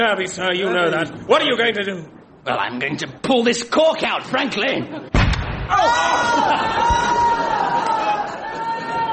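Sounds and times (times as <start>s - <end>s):
speech: 0.0s - 7.3s
loud explosion on a ship: 5.1s - 7.1s
ringing wail of raised voices: 5.7s - 9.1s.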